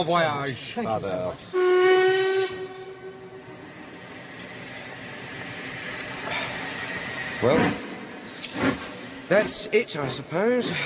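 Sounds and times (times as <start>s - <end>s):
speech: 0.0s - 1.6s, 7.4s - 7.8s, 9.3s - 10.8s
train whistle blast: 1.4s - 3.7s.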